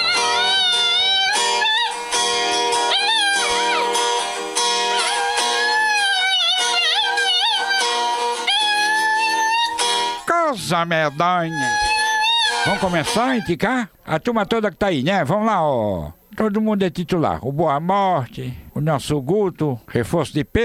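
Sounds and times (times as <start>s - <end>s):
small dog howling as if singing in wavering sing-song phrases: 0.0s - 2.0s, 2.6s - 4.2s, 4.8s - 13.5s
speech: 10.7s - 11.9s, 12.6s - 20.6s.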